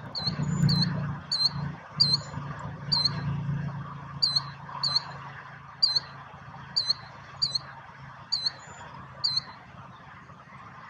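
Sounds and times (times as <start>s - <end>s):
Killdeer call song in the USA: 0.1s - 3.3s, 4.2s - 5.2s, 5.8s - 6.2s, 6.7s - 7.7s, 8.3s - 9.6s.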